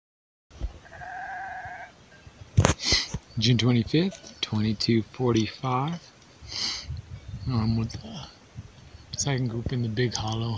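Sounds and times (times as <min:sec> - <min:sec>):
sheep bleating: 0:00.8 - 0:01.9
speech: 0:03.4 - 0:06.7, 0:07.5 - 0:08.3, 0:09.2 - 0:10.5.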